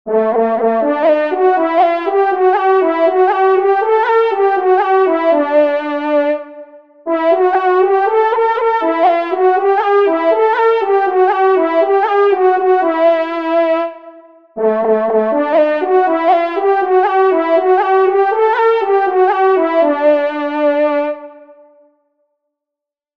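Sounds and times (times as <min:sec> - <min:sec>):
hunting horn solo: 0:00.1 - 0:21.6.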